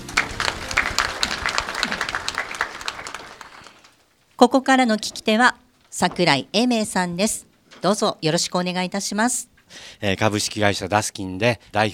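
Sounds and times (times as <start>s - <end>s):
audience applause welcoming speaker: 0.0s - 4.0s
speech: 4.4s - 11.9s.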